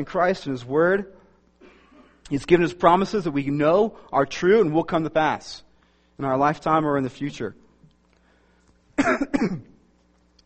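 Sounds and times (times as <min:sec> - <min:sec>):
speech: 0:00.0 - 0:01.2, 0:02.3 - 0:07.6, 0:09.0 - 0:09.7
harsh coughs during a sermon: 0:01.6 - 0:02.2, 0:09.0 - 0:09.8.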